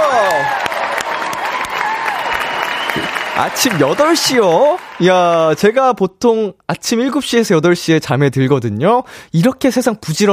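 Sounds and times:
people whooping and laughing: 0.0 - 5.0
applause from a small group: 0.0 - 5.5
speech: 3.4 - 10.3.

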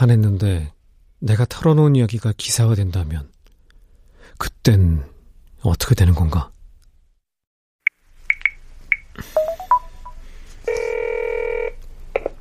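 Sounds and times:
speech: 0.0 - 3.3, 4.3 - 6.5
phone keypad beeps while dialing: 8.3 - 10.2
steady buzzing phone ring tone: 10.7 - 11.8.

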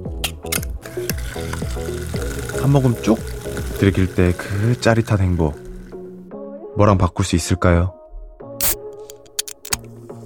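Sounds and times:
cold beer poured with steady fizzing: 0.8 - 6.2
speech: 1.0 - 5.6, 6.8 - 8.0.

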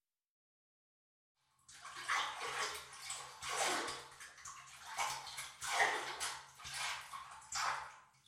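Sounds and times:
water sloshing and splashing in a bathtub as someone moves through it: 1.4 - 8.2.

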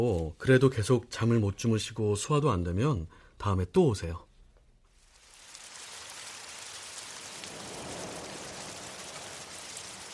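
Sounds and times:
speech: 0.0 - 4.3
steady rain falling: 4.9 - 10.1.

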